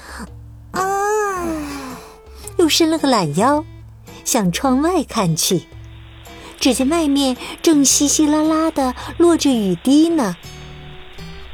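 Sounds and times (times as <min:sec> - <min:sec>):
person yawning after waking early in the morning: 0:00.0 - 0:02.3
speech: 0:00.2 - 0:00.9, 0:02.7 - 0:05.8, 0:06.6 - 0:10.5.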